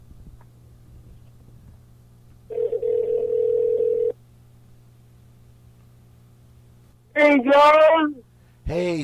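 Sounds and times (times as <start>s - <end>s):
faint low hum: 0.0s - 9.0s
telephone dial tone as a phone call is placed: 2.5s - 4.2s
speech: 7.2s - 9.0s.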